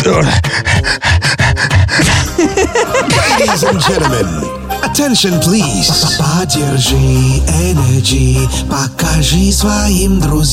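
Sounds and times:
person panting like a dog as a mouth warm-up exercise: 0:00.0 - 0:04.6
speech: 0:00.2 - 0:01.0, 0:03.7 - 0:10.5
person laughing: 0:01.9 - 0:05.0, 0:05.6 - 0:06.5.

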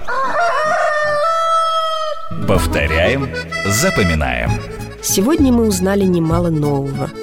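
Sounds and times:
rooster crowing: 0:00.0 - 0:02.3
speech: 0:02.5 - 0:07.2.

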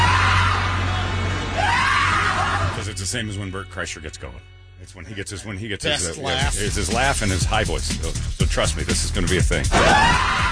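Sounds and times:
several voices screaming a wake-up shout together: 0:00.0 - 0:02.8, 0:09.7 - 0:10.4
speech: 0:03.1 - 0:10.4.

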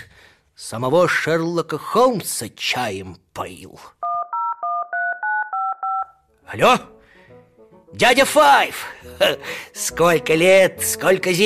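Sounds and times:
speech: 0:00.6 - 0:04.1, 0:06.5 - 0:07.0, 0:07.9 - 0:11.4
touch-tone telephone keypad dialing a number: 0:04.0 - 0:06.2.

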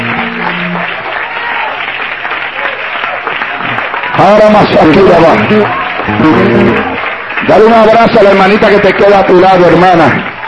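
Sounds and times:
low hum: 0:00.0 - 0:01.1
large indoor crowd clapping: 0:00.0 - 0:10.4
speech: 0:04.2 - 0:10.3.

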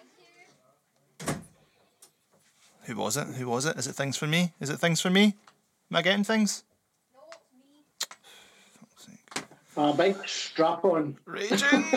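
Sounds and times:
door banging shut: 0:01.2 - 0:01.6
speech: 0:02.9 - 0:06.7, 0:09.8 - 0:11.9
laughter: 0:11.3 - 0:11.9.

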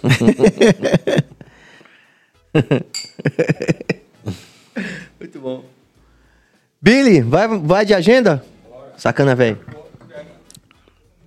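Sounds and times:
speech: 0:00.0 - 0:00.9, 0:02.6 - 0:02.9, 0:06.9 - 0:09.8
laughter: 0:00.0 - 0:01.4, 0:02.6 - 0:05.1
glasses clinking in a toast: 0:02.9 - 0:03.4.

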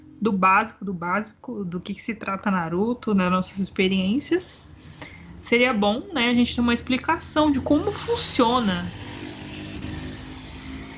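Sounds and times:
speech: 0:00.2 - 0:09.0
motorcycle engine droning, passing by outside: 0:06.6 - 0:10.9.

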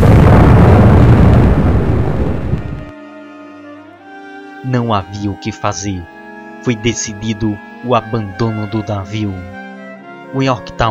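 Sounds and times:
massive roaring explosion on an aircraft carrier: 0:00.0 - 0:02.9
speech: 0:04.7 - 0:09.6, 0:10.3 - 0:10.8.

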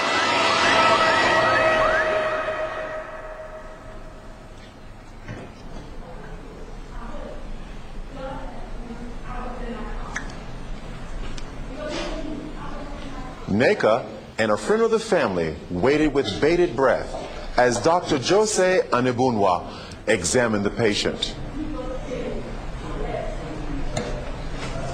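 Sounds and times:
ambulance siren wailing as the ambulance rushes to a clinic in Owerri: 0:00.0 - 0:03.8
faint noise: 0:00.0 - 0:24.9
speech: 0:13.6 - 0:21.4.

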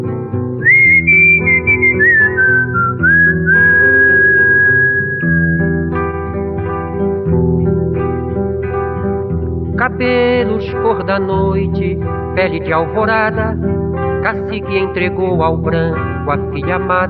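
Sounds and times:
full instrumental backing music: 0:00.0 - 0:17.0
person whistling a tune: 0:00.6 - 0:06.0
speech: 0:10.0 - 0:17.0.

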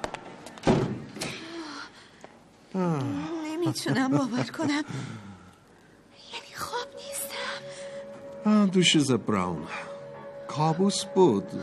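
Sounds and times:
door being shut in an audio drama scene: 0:00.6 - 0:01.2
speech: 0:02.8 - 0:05.3, 0:08.4 - 0:09.9, 0:10.6 - 0:11.6
laughter: 0:03.5 - 0:04.9.

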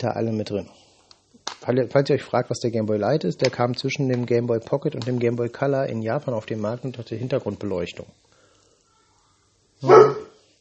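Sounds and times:
speech: 0:00.0 - 0:00.9, 0:01.6 - 0:08.3
dog barking at neighbours in the hallway: 0:09.8 - 0:10.4.

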